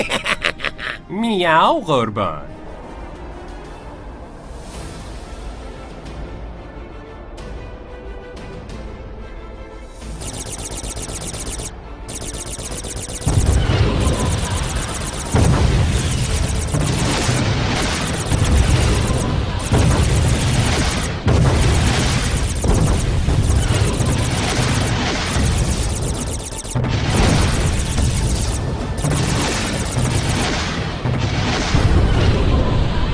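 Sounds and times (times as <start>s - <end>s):
laughter: 0.0s - 1.1s
speech: 1.1s - 2.5s
loud rumbling sci-fi explosions of a spaceship blowing apart: 10.2s - 33.1s.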